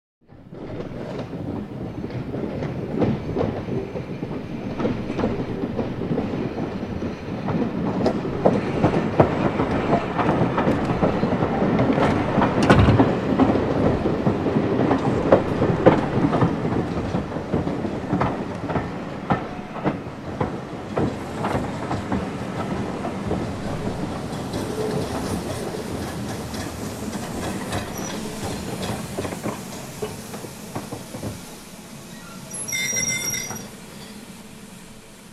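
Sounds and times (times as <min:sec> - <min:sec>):
steam engine: 0:02.2 - 0:35.3.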